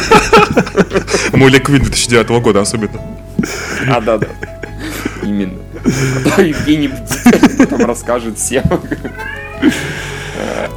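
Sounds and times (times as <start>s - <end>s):
laughter: 0.0s - 1.4s, 3.4s - 10.7s
speech: 0.4s - 4.5s, 5.2s - 10.7s
cat meowing: 9.0s - 10.1s.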